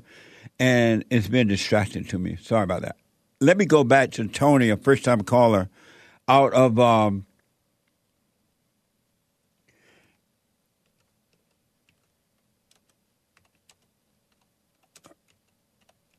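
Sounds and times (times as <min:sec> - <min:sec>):
speech: 0:00.6 - 0:07.3
typing notes on a computer keyboard: 0:10.8 - 0:16.1.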